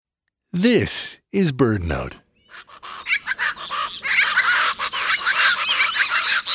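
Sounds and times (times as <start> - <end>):
speech: 0.5 - 3.0
flock of chachalacas calling at a forest edge in tropical Central America: 2.4 - 6.5.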